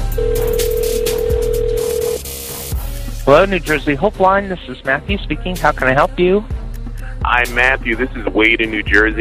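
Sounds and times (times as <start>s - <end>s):
ringback tone of a phone call to a help line in New Jersey: 0.2s - 2.3s
speech: 3.3s - 6.6s, 7.2s - 9.1s.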